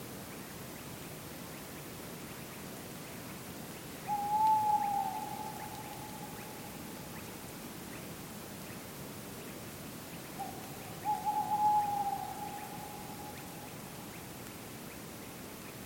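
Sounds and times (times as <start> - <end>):
soft woodland hiss: 0.0 - 15.8
long wavering owl hoots: 4.1 - 6.6, 10.4 - 13.6.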